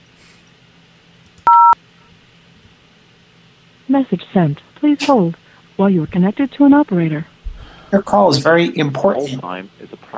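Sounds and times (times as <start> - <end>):
telephone keypad tone dialing zero: 1.5 - 1.8
speech: 3.9 - 7.3, 7.9 - 10.1.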